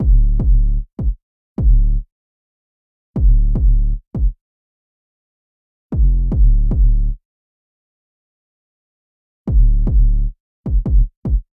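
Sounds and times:
808 bass drum beat before EQ: 0.0s - 2.0s, 3.2s - 4.4s, 6.0s - 7.2s, 9.5s - 11.5s.

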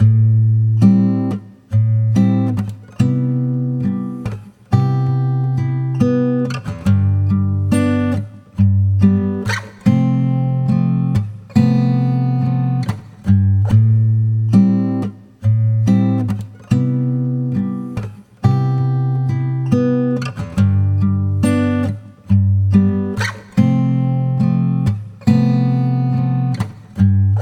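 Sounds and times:
unprocessed acoustic guitar: 0.0s - 27.4s.

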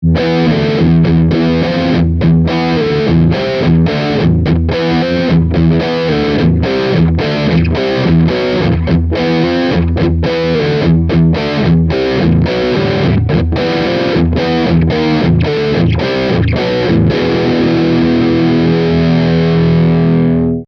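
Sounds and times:
distorted guitar bridge riff on Yamaha Pacifica 112V: 0.0s - 20.6s.

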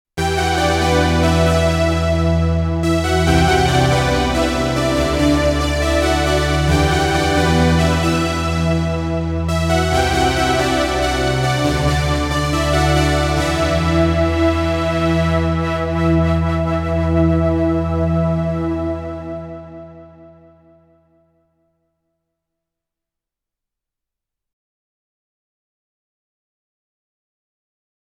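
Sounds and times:
synthesizer: 0.2s - 21.4s.

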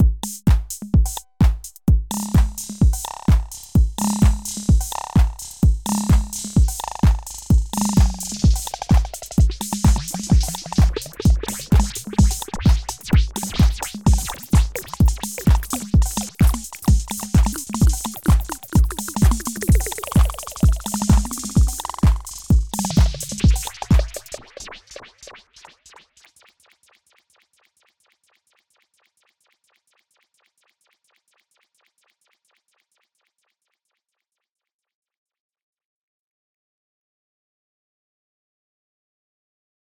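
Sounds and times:
drum machine with delay: 0.0s - 28.8s.

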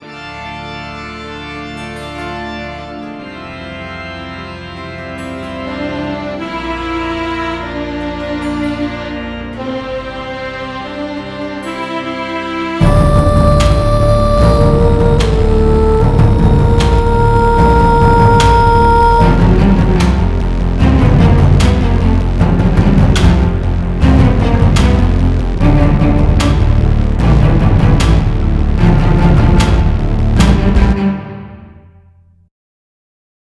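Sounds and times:
midi guitar instruments: 0.1s - 31.9s.

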